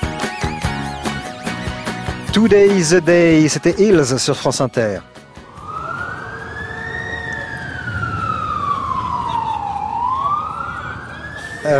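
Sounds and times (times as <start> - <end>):
speech: 2.3 - 5.2
constant low New York street traffic rumble: 3.8 - 11.7
loud wailing siren on a New York street: 5.2 - 11.7.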